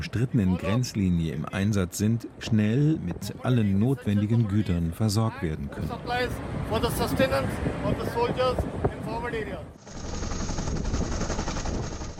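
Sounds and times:
speech: 0.0s - 10.2s
military helicopter flying overhead: 9.8s - 12.1s.

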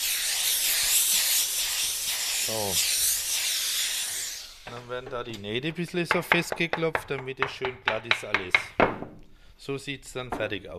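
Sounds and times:
steam iron hissing while pressing a cap on a wooden form: 0.0s - 5.0s
speech: 2.5s - 3.0s, 4.7s - 8.9s, 9.6s - 10.7s.

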